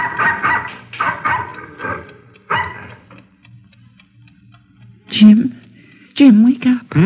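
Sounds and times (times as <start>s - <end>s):
dog barking at night at a ranch in Carson County Texas: 0.0s - 3.0s
clock ticking steadily: 0.0s - 7.0s
speech: 5.1s - 5.5s, 6.2s - 7.0s.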